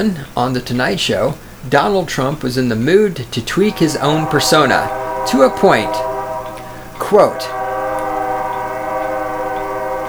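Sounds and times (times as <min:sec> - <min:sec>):
speech: 0:00.0 - 0:06.1, 0:07.0 - 0:07.6
train whistle blowing outside a studio: 0:03.3 - 0:10.0.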